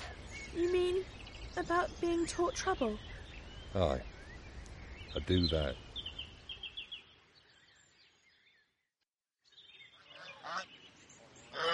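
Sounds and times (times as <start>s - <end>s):
speech: 0.5s - 3.1s, 3.7s - 4.2s, 5.2s - 5.8s
flock of geese with goslings honking: 10.0s - 10.7s, 11.5s - 11.7s.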